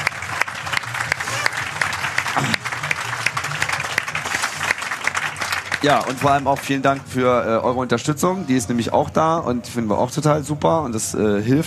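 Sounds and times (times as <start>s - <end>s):
audience clapping: 0.0s - 7.4s
speech: 5.8s - 11.6s.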